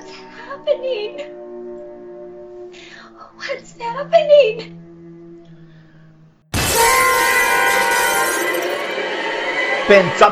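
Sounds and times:
speech: 0:00.6 - 0:01.4, 0:03.4 - 0:04.8, 0:09.9 - 0:10.2
loud crash of glass shattering: 0:06.5 - 0:08.9
bright tinkling glass shards scattering: 0:06.6 - 0:08.8.

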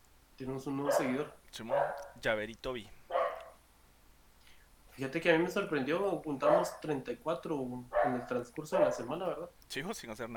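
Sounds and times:
speech: 0:00.4 - 0:03.0, 0:05.0 - 0:10.3
dog barking: 0:00.8 - 0:02.2, 0:03.1 - 0:03.6, 0:05.7 - 0:07.0, 0:07.9 - 0:09.2.

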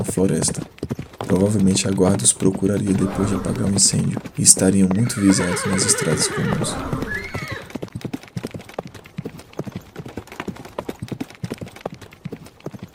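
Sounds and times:
speech: 0:00.0 - 0:07.4
horse hooves clip-clopping: 0:00.0 - 0:12.9
horse whinny: 0:02.8 - 0:04.0, 0:04.9 - 0:07.8.

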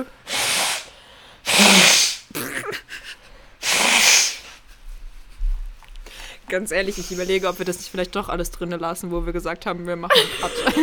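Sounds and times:
nose blowing: 0:00.0 - 0:04.7, 0:06.8 - 0:07.7
breathing: 0:00.3 - 0:01.5, 0:03.1 - 0:03.6, 0:06.0 - 0:07.7
speech: 0:06.5 - 0:10.8
laughter: 0:10.1 - 0:10.8.

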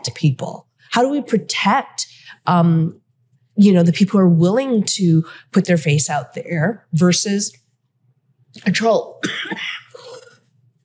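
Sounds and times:
speech: 0:00.2 - 0:03.0, 0:03.6 - 0:07.6, 0:08.5 - 0:09.8
person coughing: 0:09.2 - 0:10.4.

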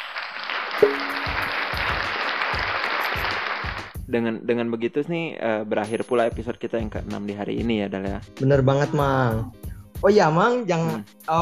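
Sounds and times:
crowd applauding: 0:00.0 - 0:04.0
brief sharp tone: 0:00.8 - 0:01.5
speech: 0:04.1 - 0:11.4.

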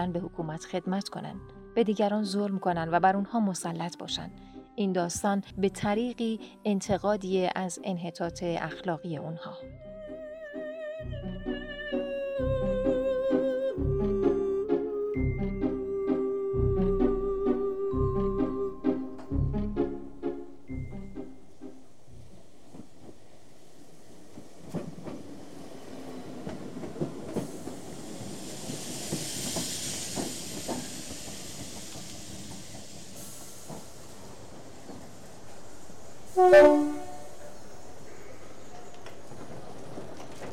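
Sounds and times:
train rumbling and clattering through a station: 0:00.0 - 0:04.4, 0:05.0 - 0:09.5, 0:11.0 - 0:40.5
speech: 0:00.0 - 0:09.9
steam hissing at a station: 0:22.6 - 0:40.2
whistle-like blast: 0:36.3 - 0:37.6.

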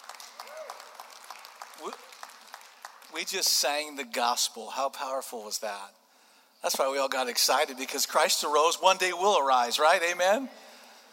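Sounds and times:
audience applauding: 0:00.0 - 0:03.8
speech: 0:01.8 - 0:02.1, 0:03.1 - 0:06.0, 0:06.6 - 0:10.6.

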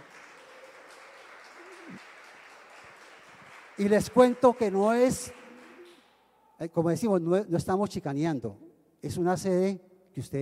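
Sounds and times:
audience applauding: 0:00.0 - 0:06.3
speech: 0:03.8 - 0:05.4, 0:06.6 - 0:10.3.

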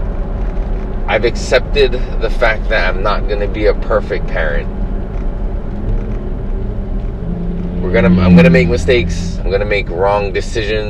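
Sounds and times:
deep droning hum inside a moving car: 0:00.0 - 0:10.8
road rumble inside a moving car: 0:00.0 - 0:10.8
speech: 0:01.1 - 0:04.8, 0:07.8 - 0:10.8.

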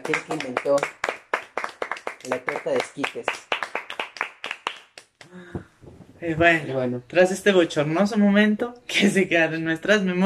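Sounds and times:
speech: 0:00.0 - 0:01.0, 0:02.2 - 0:03.5, 0:05.3 - 0:10.2
single person clapping hands: 0:00.0 - 0:05.4.

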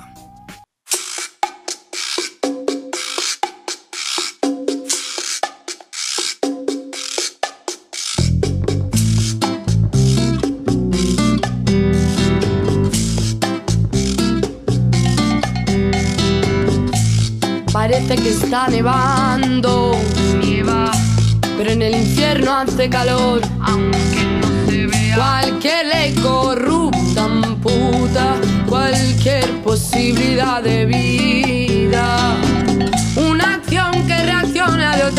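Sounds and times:
sparse choppy rhythmic pattern of a song intro: 0:00.9 - 0:35.1
full band with heavy bass and drums: 0:08.3 - 0:18.9, 0:19.7 - 0:35.1
speech: 0:18.1 - 0:24.5, 0:25.1 - 0:32.4.

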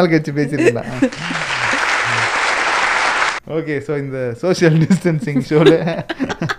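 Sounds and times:
speech: 0:00.0 - 0:01.8, 0:03.5 - 0:06.4
laughter: 0:00.6 - 0:02.7, 0:04.6 - 0:06.5
crowd clapping: 0:00.9 - 0:03.4.

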